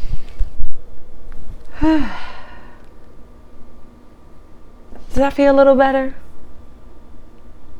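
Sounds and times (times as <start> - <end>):
faint low hum: 0.0 - 7.7
deep breath drawn in and let out as a sigh: 1.6 - 2.9
speech: 1.8 - 2.3, 5.2 - 6.2.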